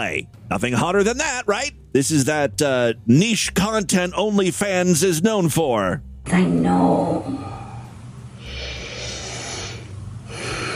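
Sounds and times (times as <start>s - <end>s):
speech: 0.0s - 7.5s
low hum: 0.0s - 10.7s
woman sniffing a doll's face: 8.4s - 10.7s.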